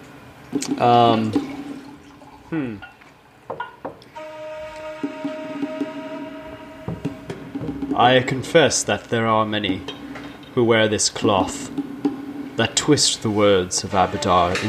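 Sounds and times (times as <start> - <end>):
speech: 0.5 - 1.5, 2.5 - 2.9, 7.9 - 10.0, 10.6 - 11.9, 12.6 - 14.6
wine pouring into a glass: 1.1 - 3.0
brief vocal sound: 2.5 - 2.8.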